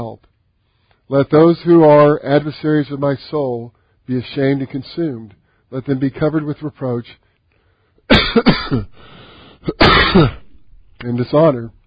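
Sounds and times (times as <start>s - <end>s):
speech: 1.1s - 7.2s, 8.1s - 10.4s, 11.0s - 11.8s
harsh coughing: 8.1s - 10.6s.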